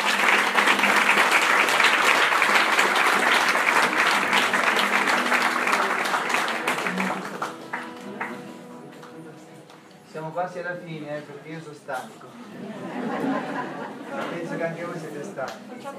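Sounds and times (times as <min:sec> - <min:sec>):
large audience applause: 0:00.0 - 0:09.2
speech: 0:10.5 - 0:15.9
laughter: 0:12.3 - 0:15.3.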